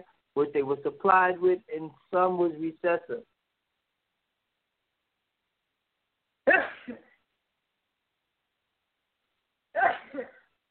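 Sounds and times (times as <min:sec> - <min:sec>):
speech: 0:00.4 - 0:03.3, 0:06.5 - 0:07.1
person sneezing: 0:06.5 - 0:07.2, 0:09.7 - 0:10.5.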